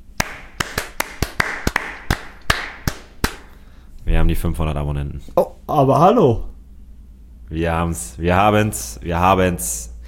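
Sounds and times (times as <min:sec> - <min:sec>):
two people clapping hands: 0:00.2 - 0:03.5
speech: 0:04.1 - 0:06.5, 0:07.5 - 0:09.9.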